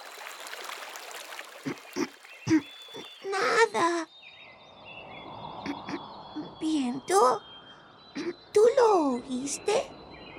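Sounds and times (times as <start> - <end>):
babbling stream: 0.0 - 3.9
water gurgling burbles: 0.0 - 4.0
speech: 2.5 - 2.7, 6.7 - 7.5, 8.2 - 10.0.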